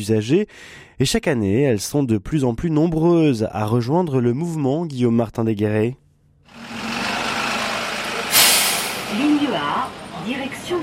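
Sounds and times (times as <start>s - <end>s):
speech: 0.0s - 6.0s
large city bus engine idling: 6.5s - 10.8s
city bus air brakes hissing: 8.0s - 9.2s.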